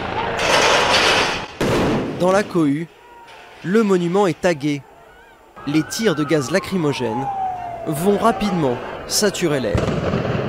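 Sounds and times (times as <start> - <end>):
metal barriers thrown by rioters during clashes: 0.2 - 2.5
speech: 2.2 - 3.0, 3.6 - 4.9, 5.6 - 10.3.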